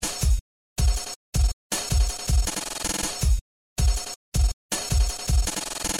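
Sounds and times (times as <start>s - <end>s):
drum loop: 0.0s - 5.9s.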